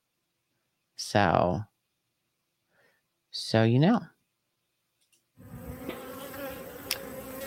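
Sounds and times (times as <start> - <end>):
speech: 1.0 - 1.7, 3.4 - 4.1
many honeybees buzzing: 5.4 - 7.4.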